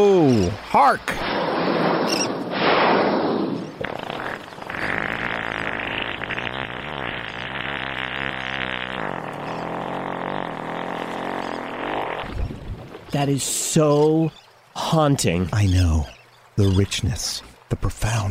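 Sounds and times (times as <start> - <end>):
speech: 0.0 - 1.4, 13.1 - 18.2
humpback whale fart: 1.2 - 13.0.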